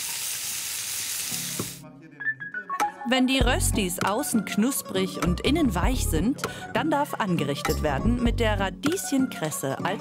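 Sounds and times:
asparagus and quartered radishes sizzling as they roast golden brown in a pan: 0.0 - 1.8
speech: 3.0 - 9.9.

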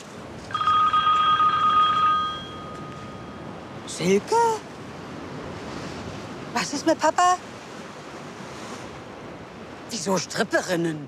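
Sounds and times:
telephone ringing with a steady electronic trill: 0.5 - 3.5
speech: 4.0 - 4.7, 6.6 - 7.5, 10.0 - 11.0.

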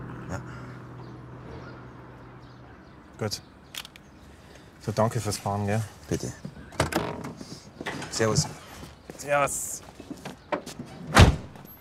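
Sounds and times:
speech: 3.2 - 3.5, 4.8 - 6.6, 8.2 - 8.6, 9.2 - 9.9
car door slamming shut: 11.1 - 11.6.

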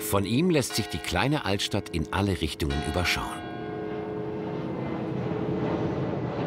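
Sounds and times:
speech: 0.1 - 3.5
roar of airplanes passing overhead: 3.7 - 6.4.

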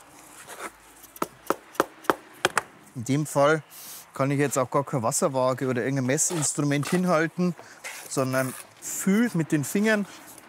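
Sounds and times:
gritty scrapes of a workpiece rubbed against another part: 0.0 - 1.3, 6.1 - 10.4
speech: 3.0 - 10.4.

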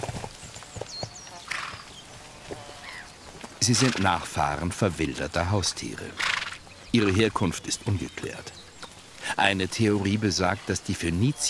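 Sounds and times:
hooves of free-roaming horses clip-clopping outdoors on a table-mountain plateau in Sardinia: 0.0 - 10.8
faint birds chirping: 0.0 - 11.4
free-roaming horse snorting or whinnying: 1.4 - 1.9, 3.6 - 4.4, 5.9 - 6.7
speech: 3.6 - 8.7, 9.3 - 11.4.

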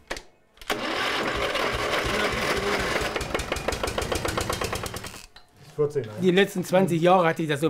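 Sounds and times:
old tractor engine starting and running: 0.7 - 5.2
old tractor exhaust rattling with rapid regular knocking: 0.9 - 5.2
speech: 5.8 - 7.6.

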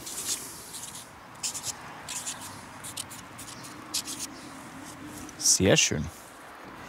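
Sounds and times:
signature being written on a stove tile: 0.0 - 4.3
speech: 5.6 - 6.2.

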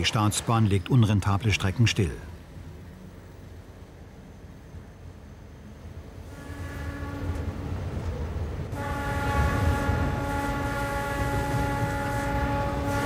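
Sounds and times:
speech: 0.0 - 2.3
low rumble of rolling rail traffic: 0.0 - 13.0
train horn blaring in the city: 6.2 - 7.8, 8.7 - 13.0.

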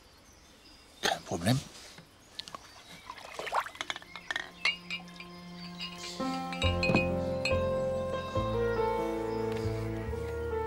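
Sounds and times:
speech: 1.3 - 1.8
pouring: 3.0 - 5.3
glasses clinking in a toast: 3.6 - 7.8
sustained musical tones: 4.0 - 10.6.

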